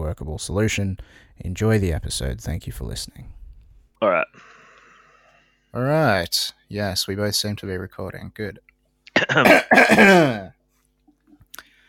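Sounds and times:
speech: 0.1s - 3.4s, 4.0s - 4.3s, 5.7s - 10.6s
two people coughing: 4.0s - 4.3s, 9.1s - 10.5s.

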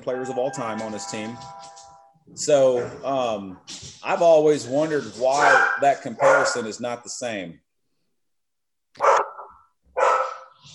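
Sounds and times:
speech: 0.0s - 7.6s
dog barking: 5.4s - 6.7s, 9.0s - 10.6s.

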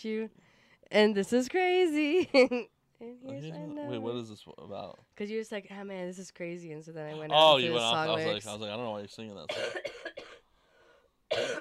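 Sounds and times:
speech: 0.0s - 10.2s
person coughing harshly: 9.5s - 10.5s, 11.3s - 11.5s.

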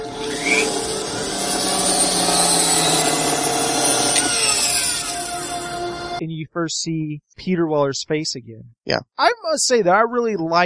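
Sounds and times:
power drill backing out long screws: 0.2s - 5.7s
speech: 6.2s - 10.6s.

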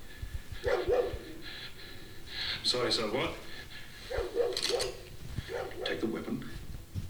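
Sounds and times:
puppy barking: 0.6s - 1.4s, 4.1s - 6.1s
speech: 2.7s - 4.2s, 5.8s - 6.5s.

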